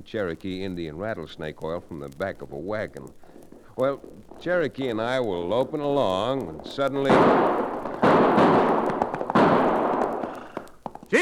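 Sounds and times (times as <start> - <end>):
speech: 0.0 - 7.8
faint small pops: 0.0 - 11.1
long rumbling echo of gunshots: 3.3 - 10.7
loud gunshots: 6.9 - 10.6.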